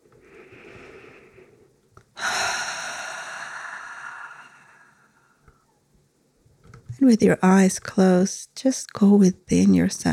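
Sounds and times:
breathy exhale through the mouth: 0:00.2 - 0:05.4
speech: 0:07.0 - 0:10.1.

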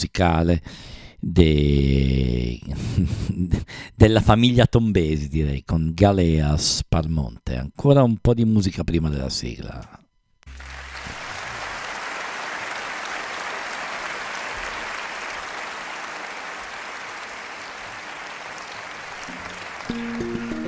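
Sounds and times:
speech: 0:00.0 - 0:10.0
live concert audience applause for a quartet: 0:10.5 - 0:20.6.

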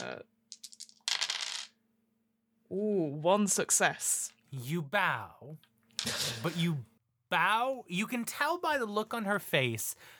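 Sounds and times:
dice rolling on a hard table for a role-playing game check: 0:00.0 - 0:01.8
speech: 0:02.7 - 0:10.1.

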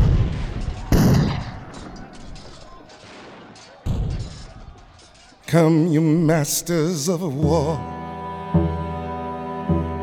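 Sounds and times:
artillery cannon blasts in an American Civil War attack on Fort Sumter: 0:00.0 - 0:05.4
rumbling scattered gunfire in an American Civil War attack on Fort Sumter: 0:00.0 - 0:05.4
speech: 0:05.5 - 0:08.0.

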